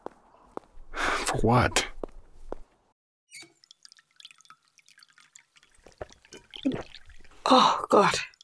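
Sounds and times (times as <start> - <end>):
speech: 1.4 - 1.9, 7.5 - 8.3
water dripping and splashing in a bathroom: 3.4 - 8.4.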